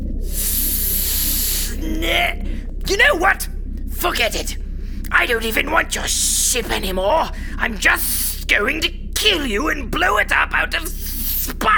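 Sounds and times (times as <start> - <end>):
voice imitating a snake hissing: 0.2 - 2.5, 10.8 - 11.7
speech: 1.8 - 11.7.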